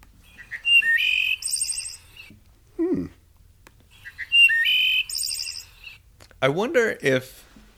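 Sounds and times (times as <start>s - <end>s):
wood thrush singing flute-like phrases: 0.2s - 2.9s, 3.8s - 6.1s
wood thrush short low call: 0.2s - 3.2s, 3.9s - 6.0s
speech: 6.4s - 7.4s.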